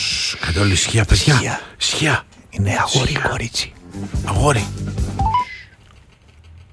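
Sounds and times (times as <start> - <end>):
speech: 0.5 - 4.9
higher electronic tone: 5.1 - 5.6
electronic phone keypad tones dialing a call: 5.2 - 5.8.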